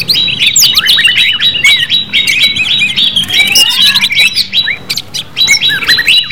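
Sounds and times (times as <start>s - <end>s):
leafbird song with fast whistled chattering: 0.0s - 6.3s.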